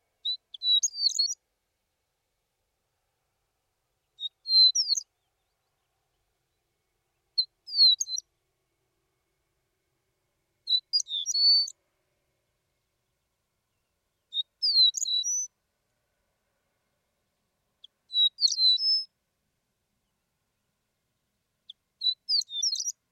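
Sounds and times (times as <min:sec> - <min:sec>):
Sahara horned lark singing: 0:00.2 - 0:01.4, 0:04.2 - 0:05.9, 0:07.4 - 0:08.3, 0:10.7 - 0:11.8, 0:14.2 - 0:15.5, 0:17.8 - 0:19.1, 0:21.7 - 0:23.0.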